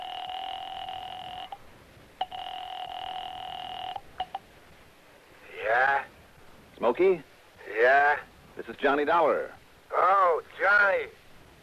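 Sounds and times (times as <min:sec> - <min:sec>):
steady two-pitch electronic telephone tone: 0:00.0 - 0:01.6, 0:02.2 - 0:04.4
speech: 0:06.8 - 0:11.2.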